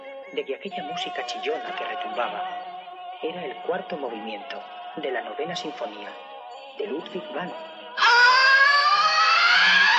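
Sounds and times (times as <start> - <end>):
speech: 0.3 - 8.2
person screaming helplessly: 8.0 - 9.9.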